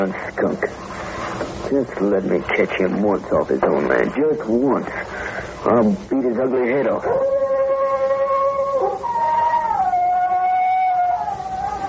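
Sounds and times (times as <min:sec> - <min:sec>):
speech: 0:00.0 - 0:00.9, 0:01.7 - 0:07.4
wolf-like howl: 0:07.0 - 0:11.8.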